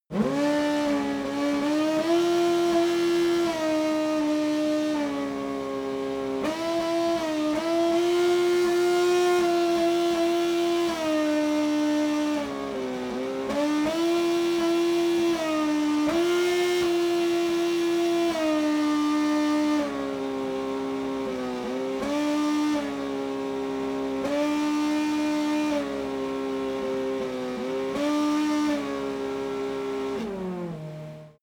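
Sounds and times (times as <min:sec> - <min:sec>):
distant Formula One racing car engine: 0:00.1 - 0:31.4.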